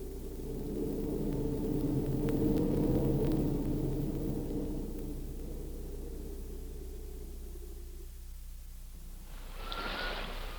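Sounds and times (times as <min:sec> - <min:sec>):
howling wind over rough sea: 0:00.0 - 0:10.5.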